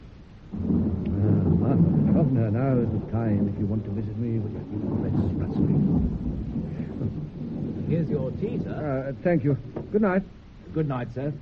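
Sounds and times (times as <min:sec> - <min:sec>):
stormy hiss of wind or rain: 0:00.0 - 0:11.4
thunder rumbling in a storm at night: 0:00.4 - 0:11.4
speech: 0:02.3 - 0:07.2, 0:07.9 - 0:11.4.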